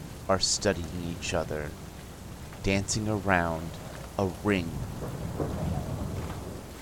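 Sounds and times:
steady rain hissing: 0.0 - 6.8
speech: 0.3 - 1.9, 2.6 - 5.8
deep rolling thunder during a storm: 1.7 - 6.8.

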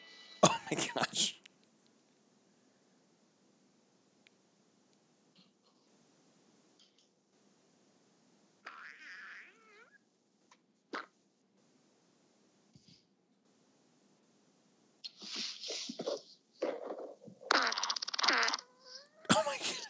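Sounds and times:
speech: 0.7 - 1.4
recorded loud wet sputtering fart noises: 10.9 - 11.2, 15.1 - 19.1.

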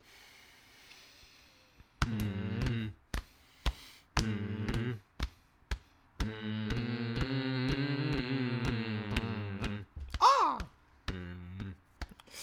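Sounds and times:
people humming together: 2.0 - 3.1, 4.2 - 5.1, 6.2 - 11.9.

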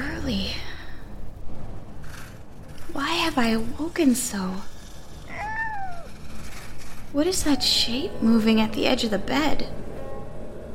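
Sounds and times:
speech: 0.3 - 0.7, 3.1 - 4.7, 7.1 - 9.9
drawn-out cat meow: 5.3 - 6.2.

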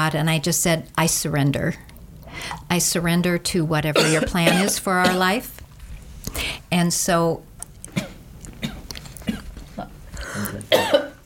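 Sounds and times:
speech: 0.0 - 5.6, 6.3 - 7.5
coughing from a dry throat: 4.0 - 5.3, 10.3 - 11.2.

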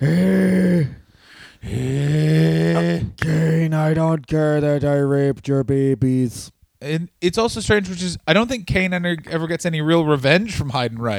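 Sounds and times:
speech: 0.0 - 1.0, 3.8 - 11.1
person imitating heavy breathing: 0.0 - 3.6.

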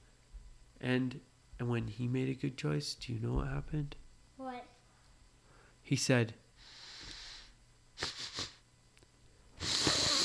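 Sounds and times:
speech: 0.8 - 4.0, 5.9 - 6.8
person imitating sniffing: 6.6 - 8.6, 9.6 - 10.2.

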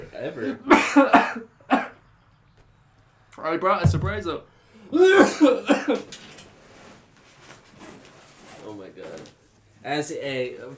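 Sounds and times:
speech: 0.1 - 1.6, 3.4 - 6.2, 8.7 - 10.7
person coughing harshly: 0.6 - 2.0, 4.9 - 6.0.

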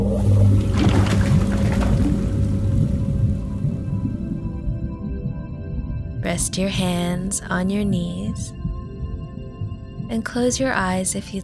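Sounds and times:
watery whoosh: 0.0 - 5.0
submarine engine starting up with a deep mechanical drone: 0.0 - 11.4
speech: 6.4 - 8.6, 10.1 - 11.4.

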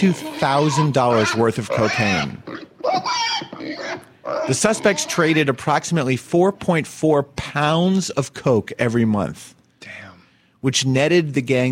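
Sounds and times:
speech: 0.0 - 3.2, 4.5 - 10.0, 10.6 - 11.7
pig grunting and oinking: 0.0 - 5.6.

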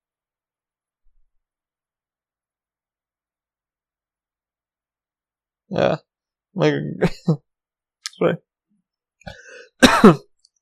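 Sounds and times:
speech: 5.7 - 7.5, 8.2 - 8.5, 9.2 - 10.3
person coughing harshly: 9.3 - 10.3.

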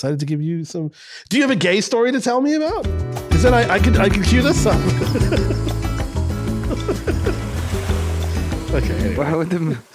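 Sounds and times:
speech: 0.0 - 5.8, 6.7 - 7.6, 8.7 - 9.9
laughter: 4.1 - 7.9
ocean waves with continuous surf roar: 4.1 - 9.9.

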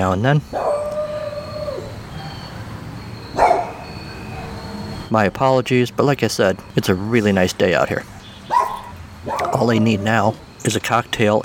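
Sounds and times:
speech: 0.0 - 0.8, 5.1 - 8.2, 9.6 - 11.4
quiet outdoor noise: 0.0 - 11.4
faint high steady tones: 1.4 - 11.4
dog barking in a backyard: 3.4 - 4.6, 8.5 - 9.8.

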